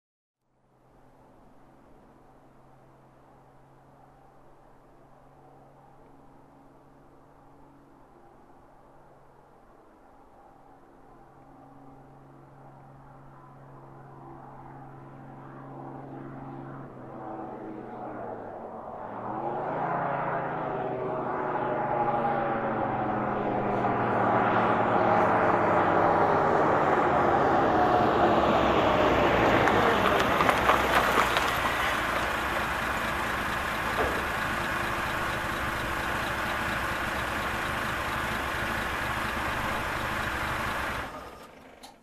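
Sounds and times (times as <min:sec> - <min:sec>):
military truck approaching: 0:10.2 - 0:42.0.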